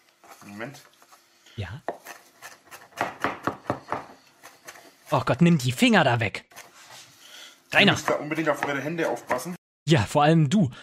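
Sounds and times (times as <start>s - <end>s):
speech: 0.4s - 1.0s, 1.6s - 2.0s, 5.1s - 6.5s, 7.7s - 10.8s
mezzaluna knife rocking and chopping food on a board: 1.8s - 4.8s, 7.8s - 9.6s.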